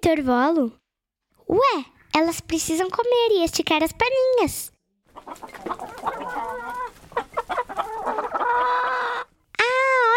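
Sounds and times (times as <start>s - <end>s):
speech: 0.0s - 0.8s, 1.5s - 6.7s
several chickens clucking and squawking: 5.1s - 9.4s
sustained crowing-like cry: 7.6s - 9.3s.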